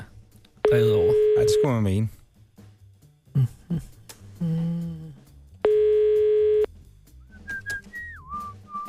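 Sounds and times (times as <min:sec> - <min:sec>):
telephone ringing tone during a live prank call: 0:00.7 - 0:01.8, 0:05.6 - 0:06.7
speech: 0:00.7 - 0:02.2, 0:03.4 - 0:04.8.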